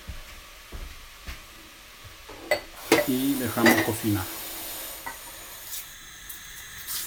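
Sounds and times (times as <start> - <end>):
sofrito pot sizzling: 2.5 - 7.0
speech: 3.1 - 4.4.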